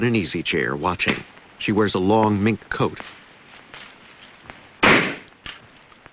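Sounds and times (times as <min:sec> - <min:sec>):
speech: 0:00.0 - 0:03.2
toy rifle shot popping balloons on a Christmas tree in a living room: 0:04.8 - 0:05.6.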